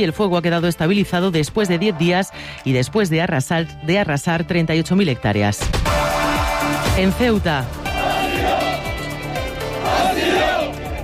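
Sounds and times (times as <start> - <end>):
speech: 0.0 - 6.2, 6.9 - 7.8
crowd of North African migrants shouting a rhythmic protest chant on a beach: 7.8 - 11.0.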